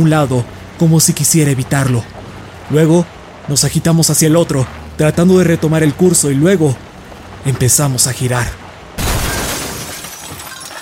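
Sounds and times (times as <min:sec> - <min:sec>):
speech: 0:00.0 - 0:09.1
car crash with violent impact: 0:09.0 - 0:10.8
glass bursting and shattering: 0:09.0 - 0:10.8.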